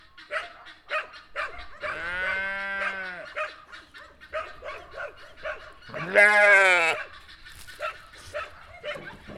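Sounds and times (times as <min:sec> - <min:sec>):
goose: 0:00.0 - 0:09.3
dog: 0:00.3 - 0:06.0, 0:06.9 - 0:09.3
sheep baaing: 0:01.8 - 0:03.5, 0:05.9 - 0:07.1.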